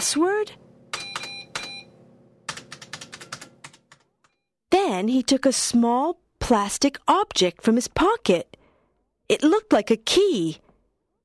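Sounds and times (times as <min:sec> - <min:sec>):
speech: 0:00.0 - 0:00.7, 0:04.8 - 0:08.6, 0:09.3 - 0:10.6
typing on a computer keyboard: 0:02.5 - 0:04.4.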